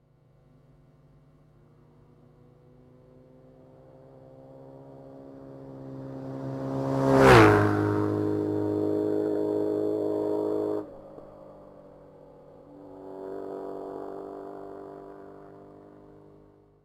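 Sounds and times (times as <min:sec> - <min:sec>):
BMW R1150GS motorcycle engine: 0:03.7 - 0:16.8.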